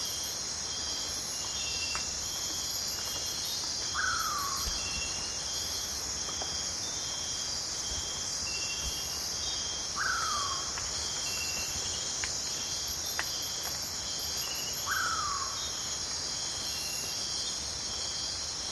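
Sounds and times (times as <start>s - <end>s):
piercing chorus of insects in a rainforest at night: 0.0s - 18.7s.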